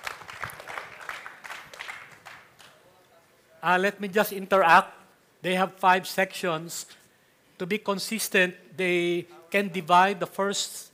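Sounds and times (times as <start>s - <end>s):
audience applause for a presenting group: 0.0s - 2.7s
speech: 3.6s - 7.0s, 7.6s - 10.9s.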